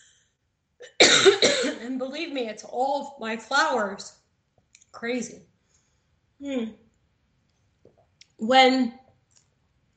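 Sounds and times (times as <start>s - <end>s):
harsh cough: 0.8s - 1.9s
speech: 1.9s - 4.2s, 5.0s - 5.5s, 6.4s - 6.8s, 8.4s - 9.0s.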